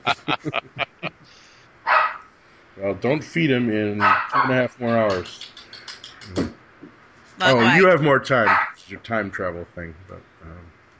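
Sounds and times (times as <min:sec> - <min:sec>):
speech: 0:00.0 - 0:00.6, 0:03.0 - 0:05.5, 0:07.4 - 0:10.3
laughter: 0:00.0 - 0:01.2, 0:02.8 - 0:05.2, 0:07.4 - 0:10.2
dog barking in short sharp yaps: 0:01.9 - 0:02.3, 0:04.0 - 0:05.0, 0:08.4 - 0:08.8.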